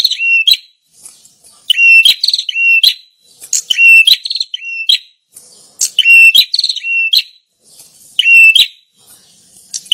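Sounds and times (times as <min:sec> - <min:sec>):
prinia lure call played to attract birds: 0:00.0 - 0:09.9.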